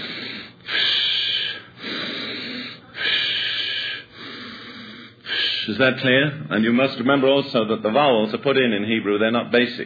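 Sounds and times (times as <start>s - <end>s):
person breathing in and out deliberately: 0.0s - 5.7s
speech: 5.7s - 9.8s.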